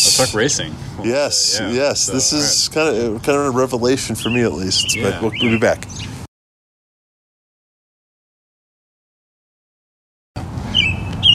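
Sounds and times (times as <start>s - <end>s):
steady low outdoor rumble: 0.0s - 6.3s
speech: 0.2s - 6.1s
bird singing high whistled phrases: 3.9s - 6.3s, 10.7s - 11.3s.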